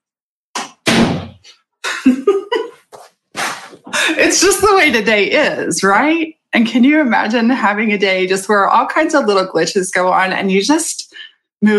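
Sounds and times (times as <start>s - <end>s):
door being pushed shut: 0.8s - 1.4s
speech: 1.4s - 2.4s, 4.1s - 11.7s.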